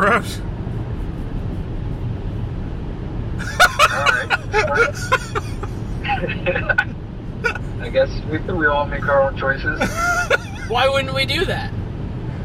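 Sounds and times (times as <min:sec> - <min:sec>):
speech: 0:00.0 - 0:00.5, 0:04.6 - 0:05.2, 0:07.9 - 0:11.8
road noise in a car cabin while driving: 0:00.0 - 0:12.4
indistinct voices: 0:03.4 - 0:06.9
laughter: 0:03.4 - 0:07.6, 0:09.8 - 0:10.7.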